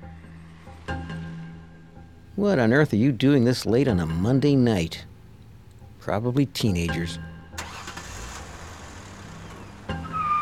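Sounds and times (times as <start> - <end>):
speech: 2.4 - 5.1, 6.0 - 7.3
car revving and speeding away late at night with rising whine: 7.6 - 10.4.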